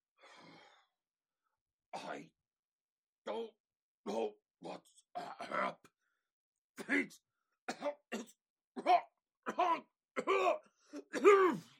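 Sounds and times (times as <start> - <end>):
speech: 2.0 - 2.4, 3.3 - 5.7, 6.9 - 7.9
voice imitating a character coughing out gas and clearing its throat: 7.7 - 11.6.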